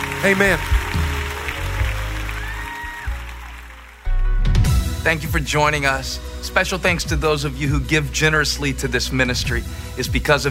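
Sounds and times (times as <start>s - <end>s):
church audience clapping during worship: 0.0s - 4.2s
speech: 0.2s - 1.0s, 5.0s - 10.4s.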